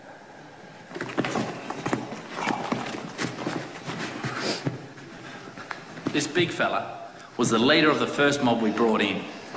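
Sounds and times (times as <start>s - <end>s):
steady rustling: 0.8s - 6.8s
horse hoof thuds and scuffs: 0.9s - 6.3s
speech: 6.2s - 9.4s.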